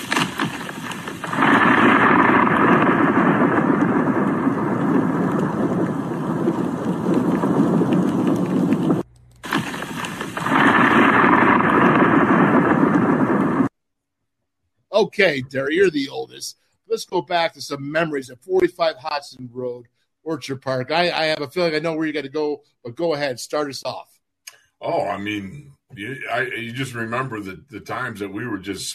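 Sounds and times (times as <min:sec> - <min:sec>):
thunder rumbling during a snowstorm: 0:00.0 - 0:13.7
speech: 0:15.0 - 0:24.1, 0:24.8 - 0:28.9.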